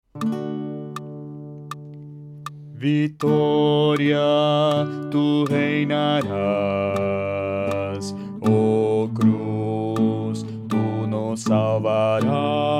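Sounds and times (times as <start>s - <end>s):
bass voice singing: 2.8s - 12.7s.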